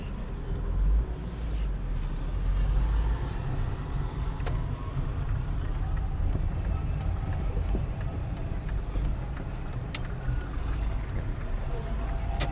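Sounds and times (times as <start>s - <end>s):
busy street traffic of cars, yellow taxis and mopeds rumbling past: 0.0s - 12.4s.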